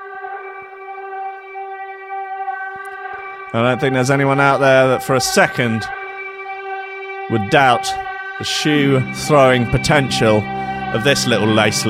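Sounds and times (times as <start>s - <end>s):
droning siren wail: 0.0s - 11.8s
speech: 2.8s - 6.0s, 7.3s - 11.8s.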